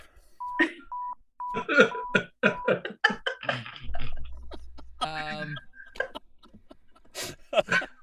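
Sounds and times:
soundboard censor beep tones: 0.4 - 2.7
laughter: 1.5 - 8.0
speech: 1.6 - 2.0.

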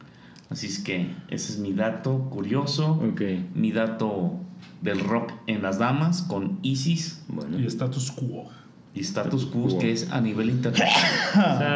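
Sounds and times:
speech: 0.5 - 11.7
sneeze caused by an allergy: 10.8 - 11.4.

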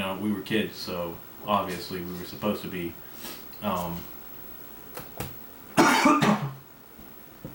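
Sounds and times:
speech: 0.2 - 4.2
harsh coughs: 5.8 - 6.6.

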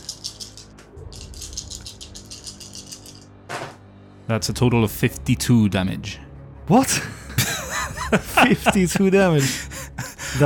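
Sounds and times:
six-sided dice clattering on a hard surface: 0.0 - 3.3
speech: 4.3 - 7.2, 8.1 - 9.7
laughter: 6.9 - 10.4.

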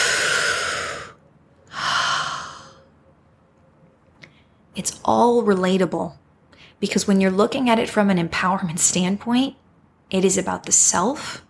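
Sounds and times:
deep airy breaths: 0.0 - 2.9
speech: 4.8 - 6.2, 6.8 - 11.4.

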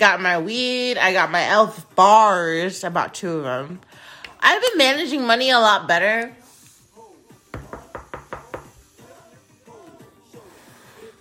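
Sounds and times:
speech: 0.0 - 6.4
knuckles knocking on wood: 7.6 - 8.8.

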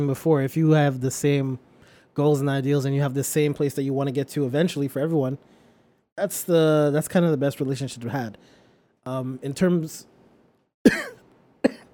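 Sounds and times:
speech: 0.0 - 5.6, 6.2 - 10.1, 10.8 - 11.2
person coughing harshly: 10.9 - 11.9.

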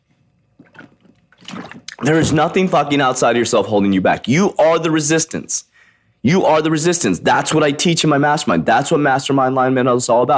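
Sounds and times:
sipping and swallowing water: 0.5 - 2.3
splash of water: 0.6 - 2.5
speech: 2.0 - 10.3.

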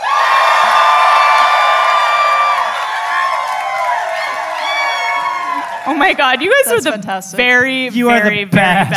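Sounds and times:
live audience cheering with whoops and shouts: 0.0 - 6.4
speech: 5.9 - 8.9.

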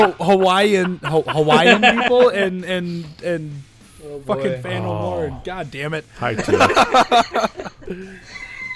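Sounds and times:
laughter: 0.0 - 2.7, 6.2 - 8.7
speech: 0.0 - 8.4
rooster crowing: 8.1 - 8.7.

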